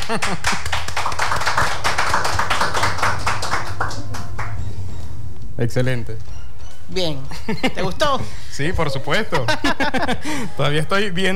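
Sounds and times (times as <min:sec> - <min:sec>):
applause after a card trick: 0:00.0 - 0:05.0
laughter: 0:00.0 - 0:05.2, 0:07.2 - 0:11.3
speech: 0:00.1 - 0:01.8, 0:05.6 - 0:11.3.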